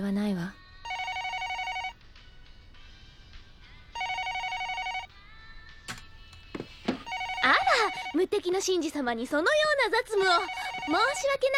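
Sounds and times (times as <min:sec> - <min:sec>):
speech: 0:00.0 - 0:00.6, 0:08.4 - 0:11.5
telephone ringing with trilling bell-like electronic tone: 0:00.8 - 0:02.0, 0:04.0 - 0:05.1, 0:06.9 - 0:08.3, 0:10.2 - 0:11.5.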